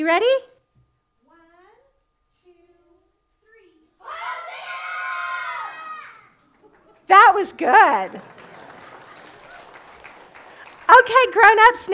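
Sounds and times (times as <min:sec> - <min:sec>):
speech: 0:00.0 - 0:00.5, 0:07.1 - 0:08.3, 0:10.9 - 0:11.9
large group of children waving branches shouting in unison: 0:04.0 - 0:06.4
laughter: 0:07.9 - 0:10.9.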